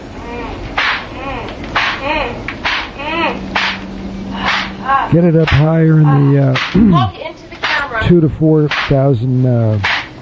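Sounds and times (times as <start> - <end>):
rising and falling vocal sounds: 0.1 - 7.8
whip cracking: 0.8 - 1.1, 1.7 - 2.0, 2.6 - 2.9, 3.6 - 3.8, 4.4 - 4.8, 6.6 - 6.8, 7.6 - 7.9, 8.7 - 9.0, 9.8 - 10.1
speech: 5.1 - 7.3, 8.0 - 9.9.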